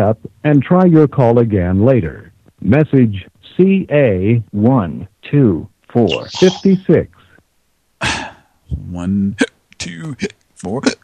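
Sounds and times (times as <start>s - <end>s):
speech: 0.0s - 7.2s, 8.0s - 11.0s
person hiccuping: 6.1s - 6.8s.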